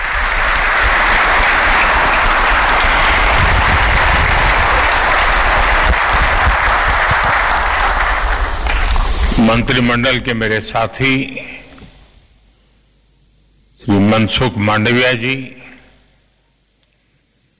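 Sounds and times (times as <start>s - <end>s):
large audience applause: 0.0s - 9.9s
speech: 9.4s - 11.6s, 13.8s - 15.6s.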